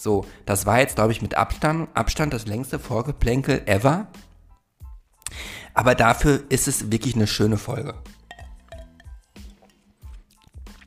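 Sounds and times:
speech: 0.0s - 4.3s, 5.3s - 8.2s
ice cubes clinking against a glass: 8.3s - 10.2s
soft liquid sloshing: 8.3s - 10.8s.

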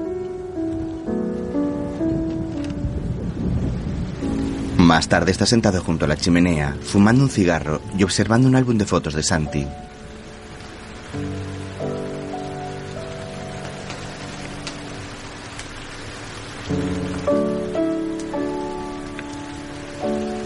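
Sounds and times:
steady rain hiss from a thunderstorm: 0.0s - 20.4s
speech: 4.9s - 10.0s.

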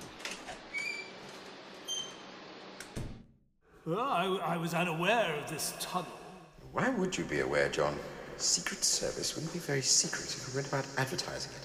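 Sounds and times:
service door in an arch at the back of Aldwych Station creaking open: 0.0s - 3.2s
steady hiss of noise: 3.7s - 11.6s
speech: 3.9s - 6.2s, 6.8s - 11.6s.

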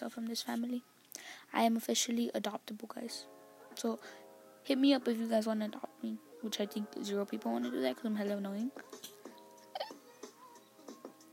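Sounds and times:
speech: 0.0s - 9.2s
person hiccuping: 9.7s - 10.0s.

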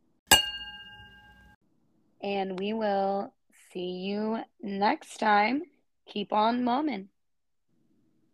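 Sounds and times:
glasses clinking in a toast: 0.3s - 1.6s
speech: 2.2s - 7.1s.

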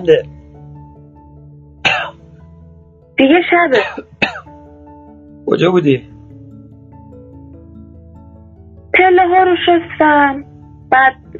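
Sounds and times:
speech: 0.0s - 0.4s, 3.2s - 4.1s, 5.5s - 6.1s, 8.9s - 11.3s
person coughing heavily while smoking a cigarette: 1.8s - 2.2s, 3.8s - 4.5s.

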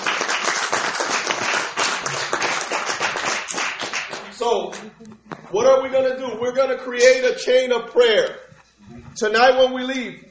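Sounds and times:
crowd applauding: 0.0s - 4.9s
speech: 4.4s - 10.2s.

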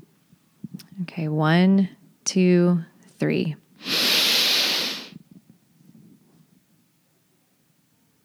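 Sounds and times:
speech: 1.0s - 4.0s
long loud breathy exhale out of the mouth during a relaxation breathing exercise: 3.8s - 5.2s.

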